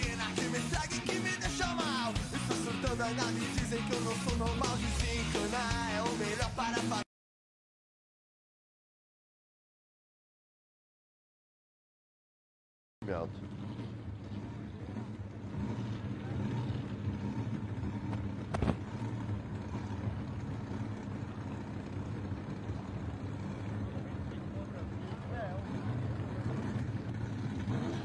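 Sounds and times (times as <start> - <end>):
racing car engines roaring around a track: 0.0 - 7.0, 13.0 - 28.0.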